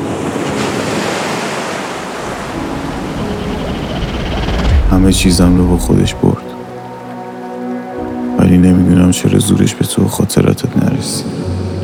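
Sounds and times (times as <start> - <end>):
heavy sea waves crashing and churning: 0.0 - 8.3
wind rushing over the surf: 2.2 - 6.6
speech: 4.9 - 6.4, 8.5 - 11.5.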